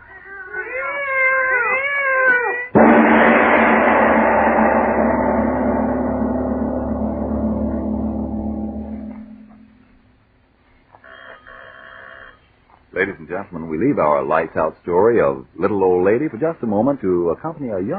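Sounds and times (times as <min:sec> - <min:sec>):
cats yowling: 0:00.0 - 0:02.7
dense droning swell: 0:02.8 - 0:09.9
speech: 0:13.3 - 0:17.9.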